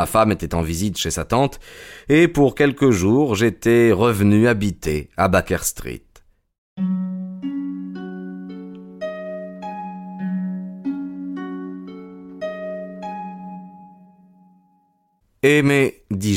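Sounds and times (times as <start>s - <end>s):
speech: 0.0s - 6.0s, 15.4s - 16.3s
doorbell chiming a melodic tune: 6.8s - 14.8s.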